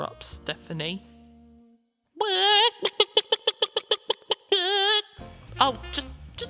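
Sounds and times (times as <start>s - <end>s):
speech: 0.0s - 1.1s, 5.6s - 6.1s
human voice imitating chicken clucks and squawk: 2.2s - 6.4s.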